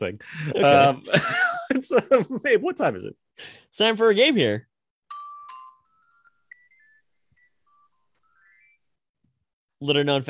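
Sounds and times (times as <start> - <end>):
speech: 0.0 - 4.7, 9.8 - 10.2
electronic ringtone jingle: 5.1 - 9.2.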